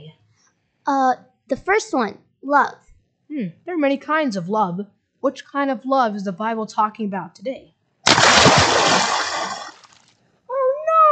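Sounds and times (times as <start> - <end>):
speech: 0.9 - 7.7
splash of person falling into water: 8.1 - 10.0.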